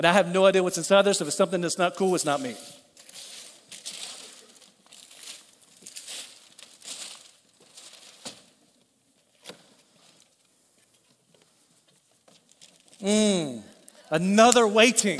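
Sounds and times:
speech: 0.0 - 2.8, 13.0 - 15.1
gift wrapping paper crinkling and tearing: 2.4 - 8.5.

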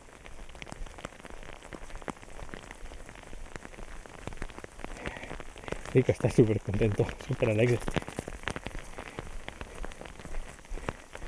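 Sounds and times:
small hailstones the size of rice grains pattering: 0.0 - 11.2
speech: 6.0 - 8.0.

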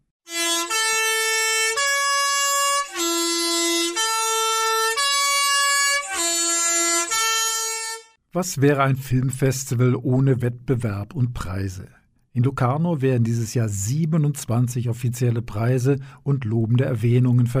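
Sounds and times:
bus horn blaring a repeating three-note melody: 0.2 - 8.2
speech: 8.4 - 17.5.

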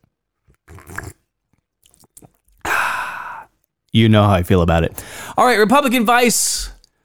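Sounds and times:
mouth and swallowing noises: 0.4 - 2.7
slurping sip of hot coffee: 0.5 - 1.2
speech: 3.9 - 6.7.

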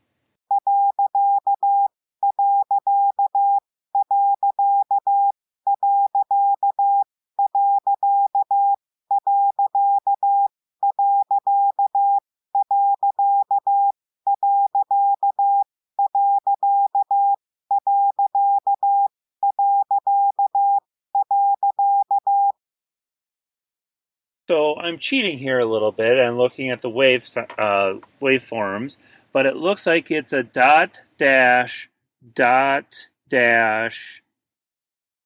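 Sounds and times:
Morse code period character sent as a steady CW tone: 0.5 - 22.6
speech: 24.8 - 34.2.

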